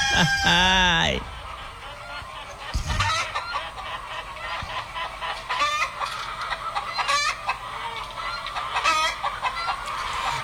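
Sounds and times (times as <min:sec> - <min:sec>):
rooster crowing: 0:00.0 - 0:02.2
laughter: 0:00.0 - 0:03.4
hens clucking: 0:00.0 - 0:10.4
speech: 0:00.1 - 0:01.4.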